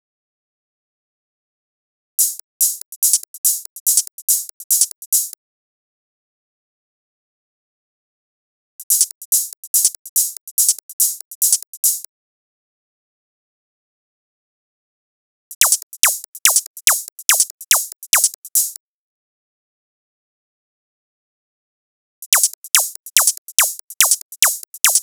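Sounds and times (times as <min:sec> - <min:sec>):
hi-hats in a drum loop: 0:02.2 - 0:05.4, 0:08.8 - 0:12.1, 0:15.5 - 0:18.8, 0:22.2 - 0:25.0
laser zaps: 0:15.6 - 0:18.3, 0:22.4 - 0:25.0.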